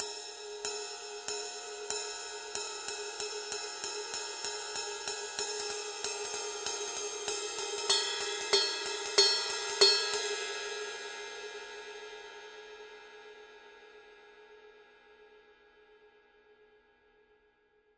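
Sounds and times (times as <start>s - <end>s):
20 ride cymbal pattern on Paiste 2002: 0.0s - 11.4s.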